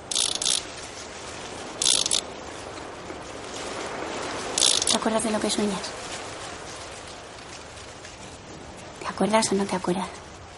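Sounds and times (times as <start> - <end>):
child spinning a ratchet noisemaker on a metal playground structure: 0.0 - 0.7, 1.8 - 2.2, 4.6 - 5.0
hiss: 0.0 - 10.5
speech: 5.0 - 6.0, 9.2 - 10.2.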